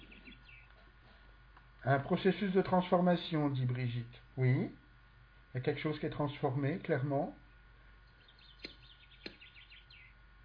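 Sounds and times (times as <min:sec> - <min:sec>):
birds chirping and twittering: 0:00.0 - 0:00.8, 0:07.5 - 0:10.2
low steady hum: 0:00.0 - 0:10.4
speech: 0:01.8 - 0:04.8, 0:05.5 - 0:07.4
sharp clicks: 0:08.6 - 0:09.5.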